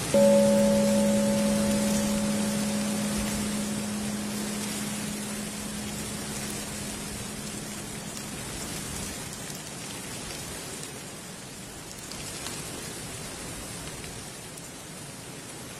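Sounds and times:
ancient temple bell ringing: 0:00.1 - 0:09.0.

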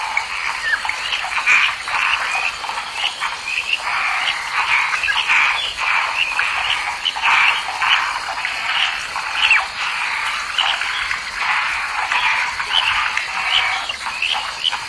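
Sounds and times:
frogs croaking in a dense chorus in a lotus pond: 0:00.0 - 0:14.8.

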